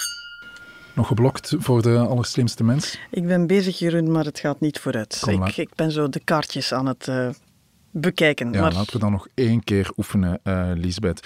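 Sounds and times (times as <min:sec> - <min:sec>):
glasses clinking in a toast: 0:00.0 - 0:01.8
quiet noise: 0:00.0 - 0:11.2
speech: 0:01.0 - 0:11.2.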